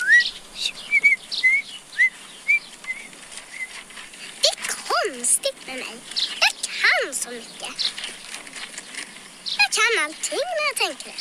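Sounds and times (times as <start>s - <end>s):
person whistling short chirpy rising notes: 0.0s - 3.1s
faint hiss: 0.0s - 11.2s
speech: 10.0s - 11.2s.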